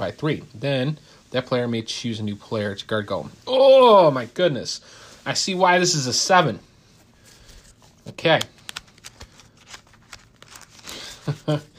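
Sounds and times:
speech: 0.0s - 6.7s, 8.1s - 8.5s, 11.5s - 11.7s
card game decks being shuffled: 7.3s - 11.5s.

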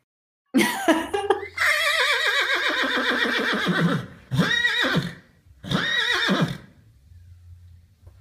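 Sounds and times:
horse neighing: 1.6s - 6.8s.

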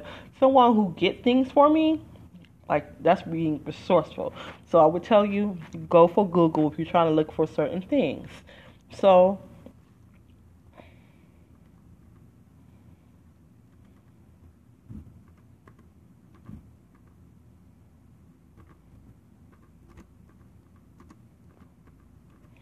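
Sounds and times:
low hum: 0.0s - 22.6s
speech: 0.4s - 2.1s, 2.7s - 9.5s
typing on a computer keyboard to look something up online: 15.2s - 17.2s, 19.5s - 22.6s.

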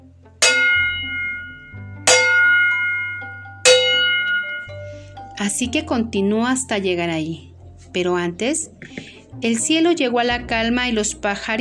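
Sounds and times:
steady low hum: 0.0s - 5.5s
distant village bells ringing: 0.4s - 5.4s
speech: 5.4s - 11.5s.

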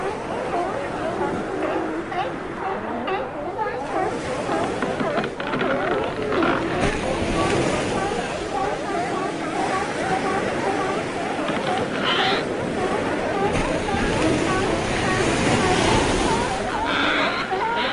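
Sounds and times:
faint wash of surf and waves: 0.0s - 17.9s
sea lions barking and bellowing on a white-sand beach: 0.0s - 17.9s.

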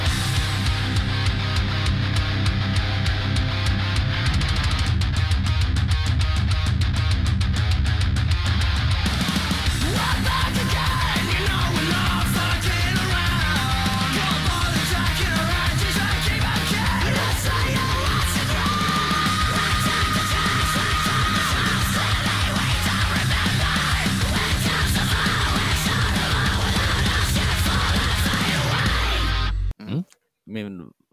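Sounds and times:
loud dense metalcore song with pounding drums and distorted guitars: 0.0s - 29.6s
metalcore vocals of clean singing and screaming: 9.7s - 29.3s.

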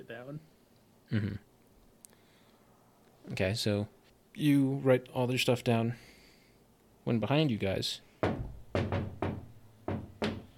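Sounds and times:
speech: 0.0s - 1.5s, 3.2s - 6.1s, 7.0s - 8.5s
firm knocks on an open office door: 8.2s - 10.5s.

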